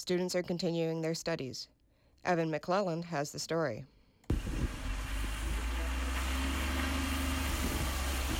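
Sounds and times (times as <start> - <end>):
speech: 0.0 - 4.6
bus engine rumbling: 4.3 - 8.3.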